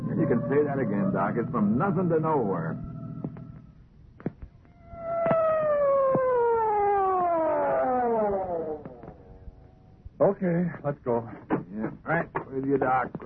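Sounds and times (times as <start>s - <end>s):
siren wailing with downward-sliding pitch: 0.0s - 3.8s, 4.6s - 10.0s
speech: 0.2s - 2.9s, 10.2s - 13.2s.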